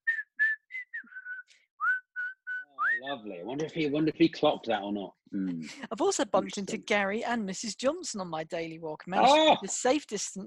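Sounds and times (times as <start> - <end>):
person whistling a tune: 0.0 - 3.1
speech: 3.0 - 10.4.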